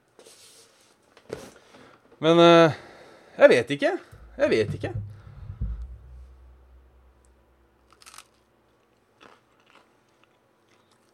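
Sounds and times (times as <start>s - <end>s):
speech: 2.2s - 2.8s, 3.4s - 5.1s
chewing crunches of homemade bread: 9.2s - 11.1s.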